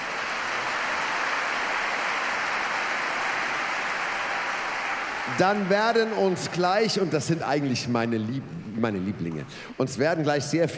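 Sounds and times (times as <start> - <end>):
large audience applauding: 0.0 - 8.3
speech: 5.3 - 10.7.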